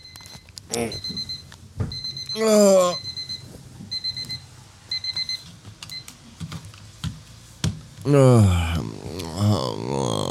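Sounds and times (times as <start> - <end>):
alarm clock ringing in short electronic beeping bursts: 0.0 - 6.0
speech: 0.8 - 1.2, 2.4 - 3.1, 8.1 - 10.1.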